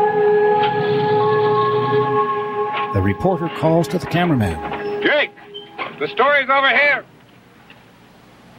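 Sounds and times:
multi-tone ambulance siren: 0:00.0 - 0:06.7
speech: 0:03.1 - 0:05.4, 0:06.0 - 0:07.1.

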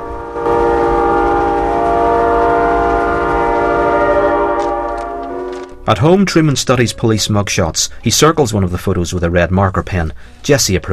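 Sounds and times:
sustained multi-toned horn-like drone: 0:00.0 - 0:05.9
train rumbling as it plunges into a tunnel: 0:00.0 - 0:09.4
speech: 0:05.9 - 0:10.9.

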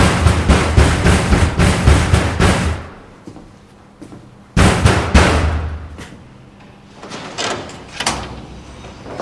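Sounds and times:
loud rapid pounding and heavy bangs on a door: 0:00.0 - 0:03.0, 0:04.6 - 0:05.9.

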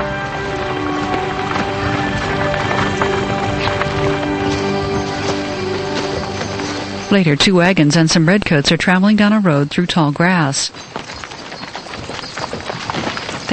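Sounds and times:
busy rushing background: 0:00.0 - 0:13.5
horse hooves clopping as a rider passes: 0:00.0 - 0:13.5
speech: 0:07.1 - 0:11.2.

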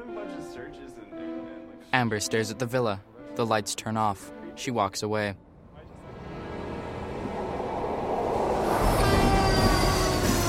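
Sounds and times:
speech: 0:00.6 - 0:05.5
passing train rumbling with a low roar: 0:05.4 - 0:10.4
faint high squealing tones: 0:06.3 - 0:10.4.

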